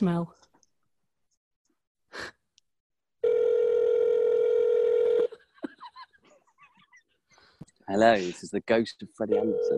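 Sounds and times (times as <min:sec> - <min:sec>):
speech: 0:00.0 - 0:00.5, 0:07.9 - 0:09.7
telephone ringtone on an outgoing call: 0:03.2 - 0:05.3, 0:09.3 - 0:09.7.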